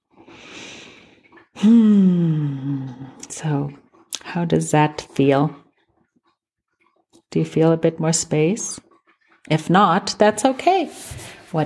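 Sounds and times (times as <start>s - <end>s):
airy breath in during a guided breathing exercise: 0.3s - 1.2s
speech: 1.6s - 2.2s, 3.4s - 3.8s, 4.4s - 5.6s, 7.3s - 8.9s, 9.5s - 11.6s.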